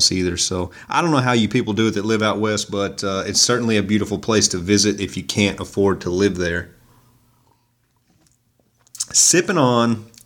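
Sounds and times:
speech: 0.0s - 6.8s, 9.2s - 10.1s
person sipping red wine: 7.4s - 9.2s.

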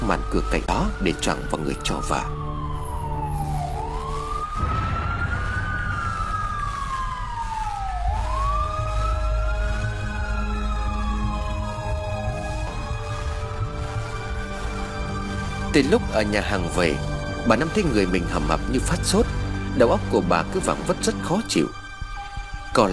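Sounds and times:
ambulance siren wailing: 0.0s - 22.9s
speech: 0.1s - 2.4s, 15.8s - 21.8s, 22.8s - 22.9s.

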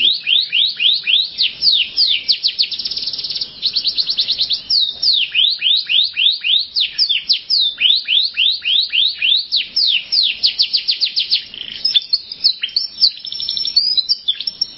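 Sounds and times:
canary song: 0.0s - 14.7s.

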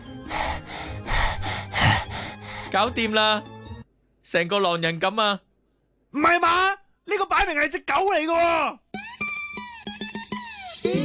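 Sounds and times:
deep breaths: 0.0s - 2.8s
speech: 2.7s - 3.5s, 4.3s - 5.5s, 6.1s - 8.8s, 10.8s - 11.0s.

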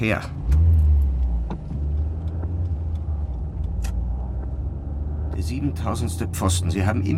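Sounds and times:
speech: 0.0s - 0.4s, 5.4s - 7.1s
car driving at night, deep engine rumble: 0.0s - 7.1s
road hum: 0.0s - 7.1s.

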